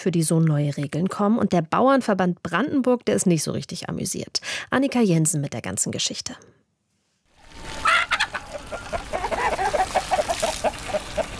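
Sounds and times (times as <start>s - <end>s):
speech: 0.0s - 6.7s
outdoor noise: 0.0s - 11.3s
chickens clucking in a chicken run: 7.6s - 11.3s.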